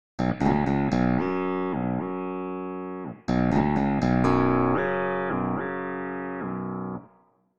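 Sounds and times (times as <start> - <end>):
pitch bend tone: 0.2 - 7.1.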